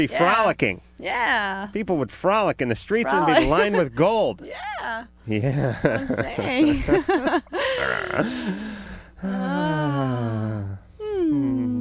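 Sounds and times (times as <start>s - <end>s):
speech: 0.0s - 10.5s
laughter: 3.2s - 4.0s, 5.4s - 8.7s
man moaning and groaning: 7.6s - 11.7s
wavering vocal sounds: 7.6s - 11.7s.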